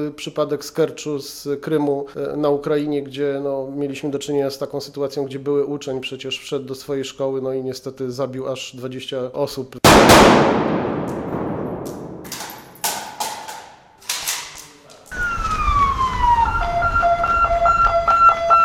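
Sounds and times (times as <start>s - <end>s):
speech: 0.0s - 11.3s
ambulance and police sirens outside a building on Składowa Street in Łódź Poland: 15.1s - 18.6s.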